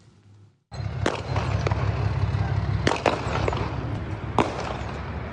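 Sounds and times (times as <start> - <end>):
gunfire in a gun battle with a carjacking suspect on a Houston Texas freeway: 0.9 - 5.2.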